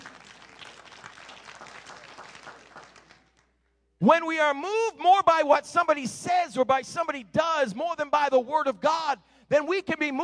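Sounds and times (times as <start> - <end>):
few scattered hand claps: 0.0 - 3.6
speech: 4.0 - 10.2.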